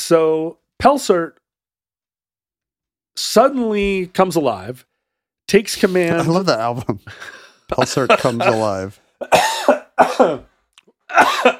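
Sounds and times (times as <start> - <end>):
speech: 0.1 - 1.4, 3.2 - 4.9, 5.5 - 10.5, 11.1 - 11.5
laughter: 5.8 - 8.9
person coughing: 7.7 - 11.5.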